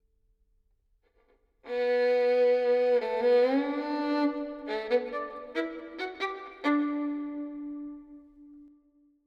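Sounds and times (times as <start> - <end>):
violin melody with reverb in B minor: 1.7 - 8.7.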